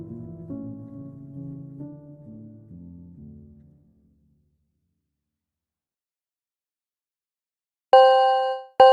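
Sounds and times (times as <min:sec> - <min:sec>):
bright bell-like phone notification ding: 0:08.0 - 0:08.9.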